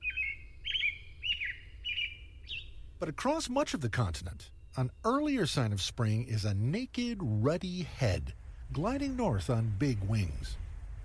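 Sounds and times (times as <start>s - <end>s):
American Robin song: 0.0s - 11.0s
low rumbling background: 2.7s - 11.0s
speech: 3.0s - 10.6s.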